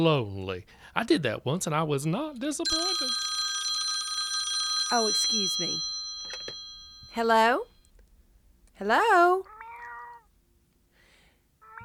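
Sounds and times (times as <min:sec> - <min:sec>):
speech: 0:00.0 - 0:03.3, 0:04.9 - 0:06.5, 0:07.2 - 0:07.7, 0:08.8 - 0:09.5
cat meowing: 0:09.4 - 0:10.3, 0:11.6 - 0:11.8.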